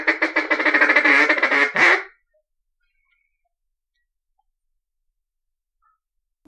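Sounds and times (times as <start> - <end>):
mallard quacking: 0.0 - 2.2.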